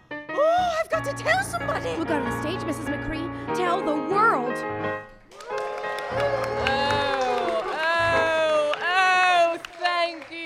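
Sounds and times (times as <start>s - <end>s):
speech: 0.8s - 5.1s, 6.1s - 6.9s
crowd cheering and whooping: 5.3s - 10.4s
scattered clapping: 5.3s - 10.4s.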